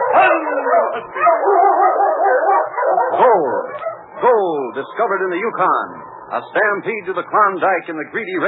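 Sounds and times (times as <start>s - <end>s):
sled dog baying and yipping: 0.0s - 4.3s
speech: 0.2s - 1.7s, 4.8s - 8.4s.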